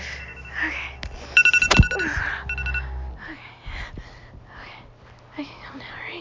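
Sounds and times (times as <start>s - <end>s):
electronic timer alarm beeping: 0.0s - 3.0s
low hum: 0.0s - 6.1s.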